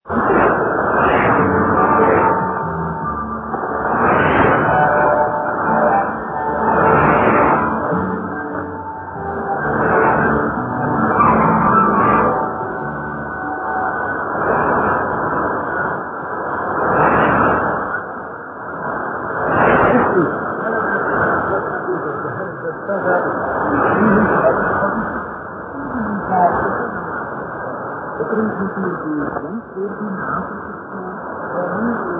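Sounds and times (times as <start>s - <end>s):
shortwave radio broadcast on 3345 kHz: 0.0s - 32.1s.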